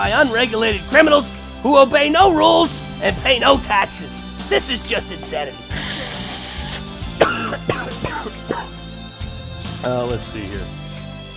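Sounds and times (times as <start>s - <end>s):
speech: 0.1s - 5.9s, 7.5s - 8.7s, 9.8s - 10.8s
short harsh coughs: 5.7s - 8.8s.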